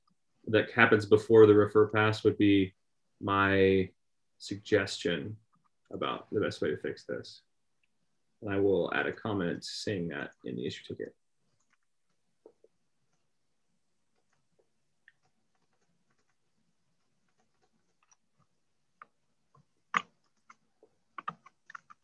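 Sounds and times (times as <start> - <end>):
speech: 0.5 - 7.5, 8.4 - 11.2
typing on a computer keyboard: 14.1 - 22.0.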